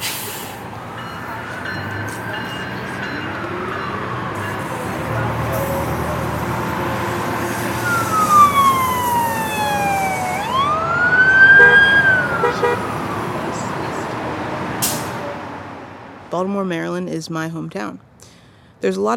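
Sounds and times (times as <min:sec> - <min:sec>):
emergency siren wailing in Baltimore Maryland: 0:00.0 - 0:16.0
traffic rumble on a busy city street in Baltimore Maryland: 0:00.0 - 0:19.1
speech: 0:16.4 - 0:18.1, 0:18.8 - 0:19.1.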